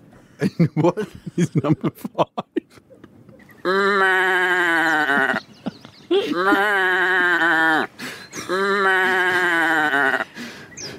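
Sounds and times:
speech: 0.4s - 2.8s, 6.2s - 7.3s
laughter: 0.4s - 3.4s, 5.0s - 7.5s
person imitating sheep bleating: 3.6s - 5.4s, 6.2s - 10.3s
quick breath: 7.9s - 8.4s, 10.2s - 10.9s.

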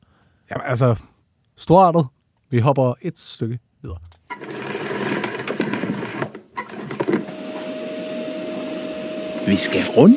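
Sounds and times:
speech: 0.5s - 4.2s, 9.5s - 10.1s
vacuum cleaner running with rushing roar and motor whine: 4.3s - 10.1s.

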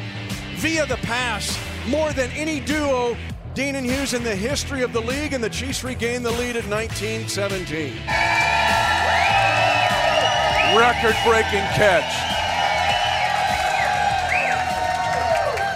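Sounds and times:
announcer speaking over crowd noise: 0.6s - 7.8s, 10.6s - 12.2s
speech: 0.6s - 8.4s, 10.7s - 12.3s
high whoops and shouts from a live crowd: 8.1s - 15.7s
large live crowd cheering at night at the Nolan Road Hy-Vee location: 8.1s - 15.7s.

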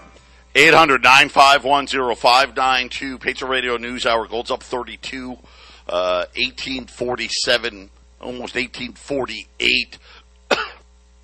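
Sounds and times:
speech: 0.6s - 10.7s
person coughing while choking: 10.5s - 10.9s.

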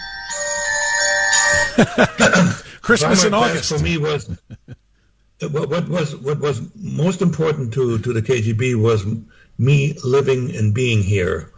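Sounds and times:
mobile phone electronic ringtone: 0.0s - 1.8s
laughter: 1.5s - 4.8s
speech: 1.8s - 4.8s, 5.4s - 11.5s.

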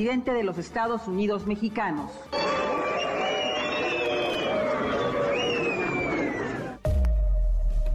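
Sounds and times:
speech: 0.0s - 2.6s
large crowd at an event in Mexico booing: 2.3s - 6.9s
shrill whistles from a large crowd at an event in Mexico: 2.4s - 6.8s.

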